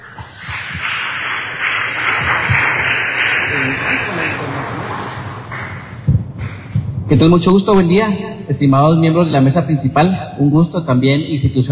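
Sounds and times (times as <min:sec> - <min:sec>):
audience applause: 0:00.0 - 0:06.7
speech: 0:07.1 - 0:11.7.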